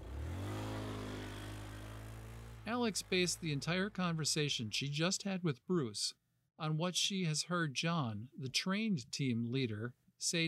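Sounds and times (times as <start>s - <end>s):
UTV engine revving and droning: 0.0s - 4.0s
speech: 2.6s - 10.4s.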